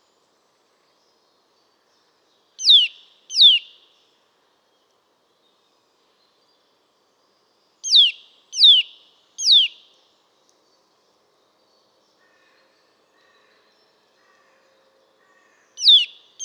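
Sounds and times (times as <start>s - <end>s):
Eurasian nuthatch Sitta europaea whistled calls: 2.6s - 3.7s, 7.8s - 9.8s, 15.8s - 16.4s.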